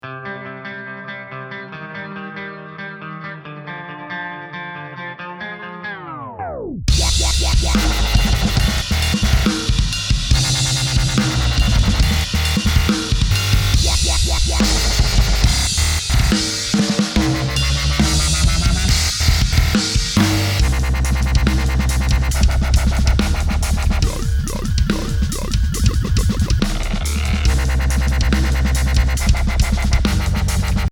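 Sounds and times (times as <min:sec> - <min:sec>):
wobble bass intro: 0:06.4 - 0:30.9.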